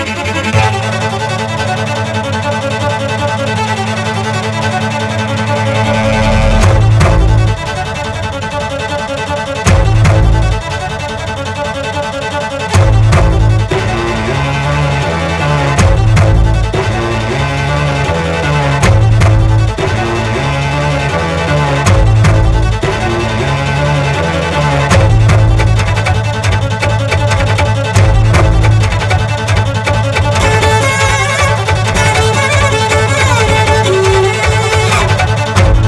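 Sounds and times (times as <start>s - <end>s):
cellos playing: 0.2s - 35.8s.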